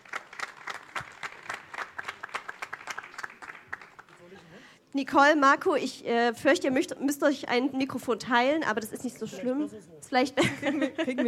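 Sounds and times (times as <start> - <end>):
crowd applauding at an anniversary event: 0.0 - 4.4
speech: 4.9 - 11.2
laughter: 10.4 - 11.2.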